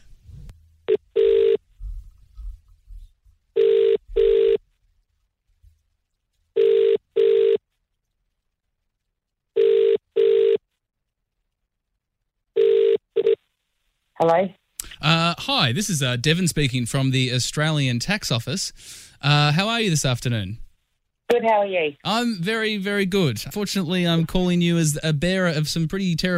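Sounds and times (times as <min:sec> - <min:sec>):
ringback tone of an outgoing phone call: 0:00.9 - 0:01.6, 0:03.6 - 0:04.6, 0:06.6 - 0:07.6, 0:09.6 - 0:10.6, 0:12.6 - 0:13.4
speech: 0:14.2 - 0:20.6, 0:21.3 - 0:26.3.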